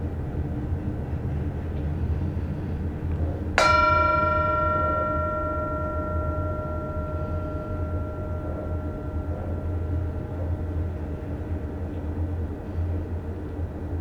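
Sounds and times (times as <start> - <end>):
steady low rumble: 0.0 - 13.9
mindfulness bell ringing with shimmering overtones: 3.6 - 12.5.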